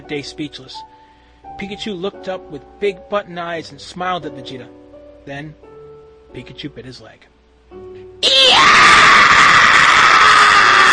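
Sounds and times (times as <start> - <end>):
speech: 0.1 - 0.9, 1.6 - 5.6, 6.3 - 8.4
man screaming in pain and anger: 8.2 - 10.9.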